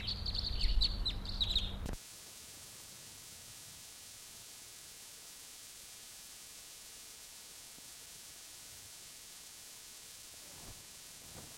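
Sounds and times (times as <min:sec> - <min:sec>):
wild bird calling in flight with thin high chirps: 0:00.0 - 0:01.9
low steady hum: 0:00.0 - 0:11.5.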